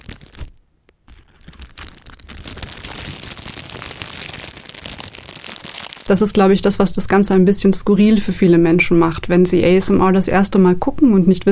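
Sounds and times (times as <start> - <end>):
plastic bags crinkling and crackling as ASMR trigger: 0.0 - 7.0
speech: 6.1 - 11.5.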